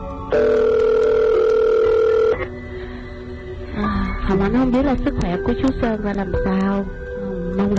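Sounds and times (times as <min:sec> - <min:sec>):
phone call ringing tone through a receiver: 0:00.3 - 0:02.5
speech: 0:04.3 - 0:07.7.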